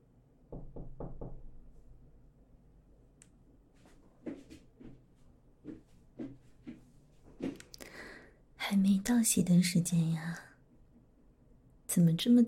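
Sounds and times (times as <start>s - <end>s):
knocking on a dormitory door: 0.5s - 1.6s
speech: 9.1s - 10.5s, 12.0s - 12.4s.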